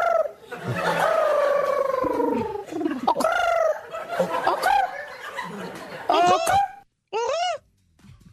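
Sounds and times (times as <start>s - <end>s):
person imitating pigeon cooing: 0.0s - 3.8s, 6.1s - 7.6s
rising and falling hoots: 0.0s - 7.6s
laughter: 0.3s - 6.8s.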